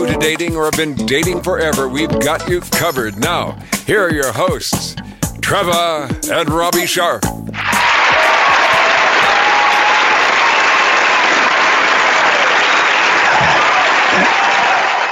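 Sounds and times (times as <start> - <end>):
speech: 0.2 - 7.8
large crowd applauding: 7.6 - 15.1.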